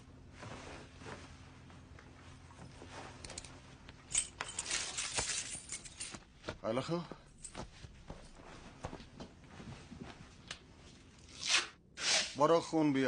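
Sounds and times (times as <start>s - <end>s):
keys jangling as they are picked up: 3.2s - 6.2s
speech: 6.6s - 7.2s, 12.4s - 13.0s.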